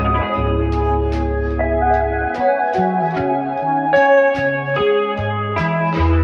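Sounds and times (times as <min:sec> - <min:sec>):
guitar loop: 0:00.0 - 0:06.2.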